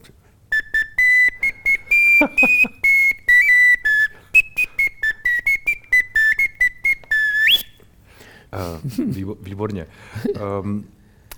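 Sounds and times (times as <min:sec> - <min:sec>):
small handheld whistle playing short shrill notes: 0:00.5 - 0:07.9
laughter: 0:02.2 - 0:02.8
speech: 0:08.9 - 0:11.0.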